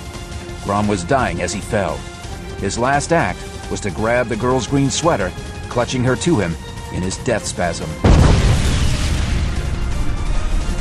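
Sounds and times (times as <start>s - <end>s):
speech: 0.6s - 8.4s
explosion boom echoing: 8.0s - 10.7s.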